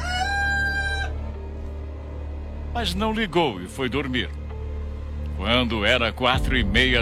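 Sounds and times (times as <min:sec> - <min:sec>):
rooster crowing: 0:00.0 - 0:01.4
speech: 0:02.8 - 0:04.4, 0:05.4 - 0:07.0.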